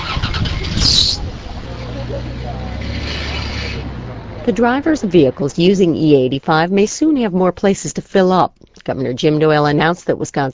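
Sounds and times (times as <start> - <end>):
postal truck engine on E85 fuel starting and pulling away: 0.0 - 6.3
speech: 4.4 - 10.5.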